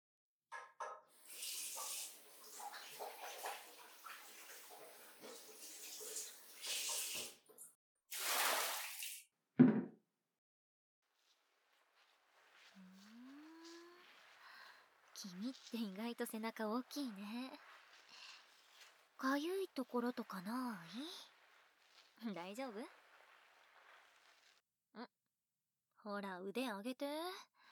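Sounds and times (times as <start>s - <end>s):
water poured over someone's back during a bath: 1.2s - 9.2s, 11.1s - 24.6s
sharp knock: 9.6s - 9.9s
speech: 15.2s - 17.7s, 19.2s - 21.3s, 22.2s - 23.0s, 25.0s - 25.2s, 26.0s - 27.5s.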